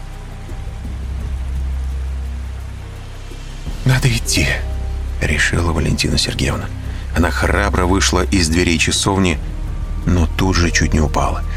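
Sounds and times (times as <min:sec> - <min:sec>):
steady rain falling at night: 0:00.0 - 0:11.5
speech: 0:03.9 - 0:11.5.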